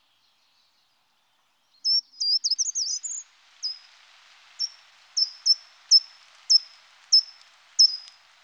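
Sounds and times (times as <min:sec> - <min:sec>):
faint background hiss: 0:00.0 - 0:08.4
short-toed treecreeper song: 0:01.7 - 0:03.8, 0:04.6 - 0:08.1.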